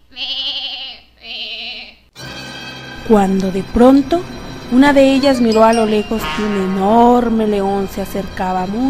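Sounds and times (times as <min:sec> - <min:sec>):
small goats bleating while grazing on grass on the plains: 0:00.1 - 0:02.0
speech: 0:03.1 - 0:08.8.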